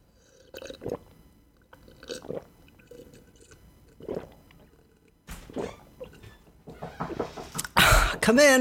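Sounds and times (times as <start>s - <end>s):
sips and gulps of water: 0.1s - 6.2s
wet mouth and swallowing sounds: 0.3s - 5.2s
speech: 8.2s - 8.5s.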